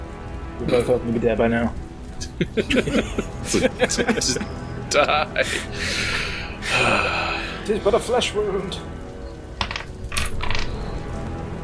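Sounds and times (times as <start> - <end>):
speech: 0.6 - 9.0
laughter: 2.2 - 7.6
dice clattering across a hard tabletop: 9.6 - 10.8.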